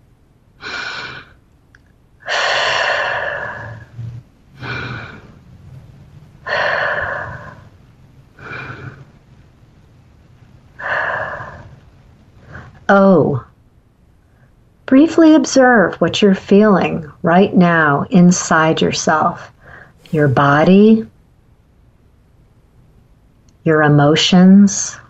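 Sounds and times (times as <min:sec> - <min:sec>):
slow deep breaths as part of a mindfulness practice: 0:00.6 - 0:01.4, 0:02.2 - 0:09.6, 0:10.3 - 0:12.9, 0:19.5 - 0:20.5
speech: 0:15.0 - 0:19.5, 0:20.1 - 0:21.1, 0:23.6 - 0:25.0.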